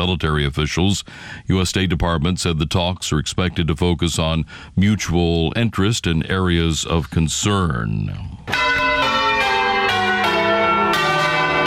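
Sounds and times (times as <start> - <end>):
speech: 0.0 - 8.8
church bells ringing in overlapping peals: 8.5 - 11.6.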